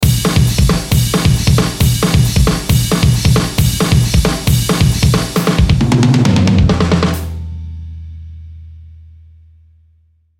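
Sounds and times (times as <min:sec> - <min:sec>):
drum pattern: 0:00.0 - 0:07.5.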